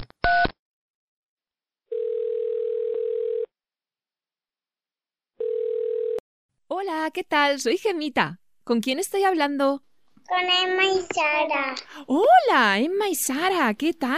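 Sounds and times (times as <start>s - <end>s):
telephone number being dialed: 1.9s - 3.5s, 5.4s - 6.2s
speech: 6.7s - 14.1s.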